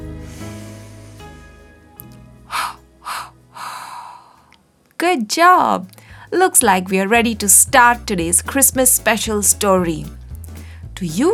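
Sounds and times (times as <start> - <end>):
soft sustained music: 0.0 - 4.5, 5.3 - 11.3
person breathing in deeply: 2.5 - 4.6, 6.0 - 6.3, 10.6 - 10.9
speech: 5.0 - 10.2, 11.0 - 11.3.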